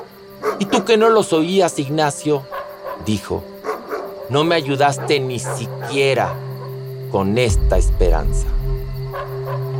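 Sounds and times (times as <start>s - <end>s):
dogs barking all around: 0.4s - 0.9s, 2.5s - 6.8s
speech: 0.6s - 3.5s, 4.3s - 6.4s, 7.1s - 8.8s
steady low hum: 7.5s - 9.6s.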